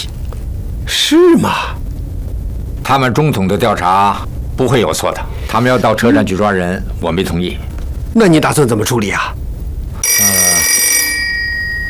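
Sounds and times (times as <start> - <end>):
low murmur: 0.0 - 10.0
speech: 1.1 - 1.8, 2.9 - 9.4
telephone bell ringing: 10.0 - 11.8.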